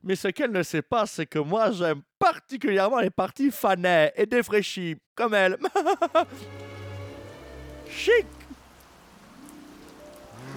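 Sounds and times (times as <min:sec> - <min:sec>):
speech: 0:00.1 - 0:06.7, 0:07.9 - 0:08.4
laughter: 0:05.6 - 0:06.5
steady rain falling: 0:06.1 - 0:10.5.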